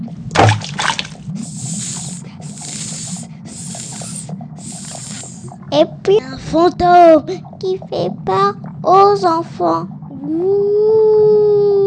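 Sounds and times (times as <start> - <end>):
low bubbling background: 0.0 - 11.8
snake hissing: 1.4 - 5.6
speech: 5.7 - 10.6.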